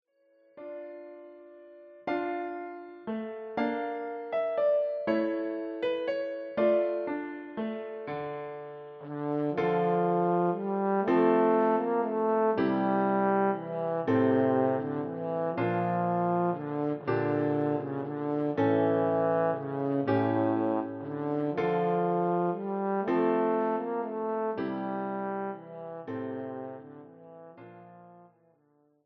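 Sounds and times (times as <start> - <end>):
piano: 0.1 - 28.7
trombone: 9.0 - 28.3.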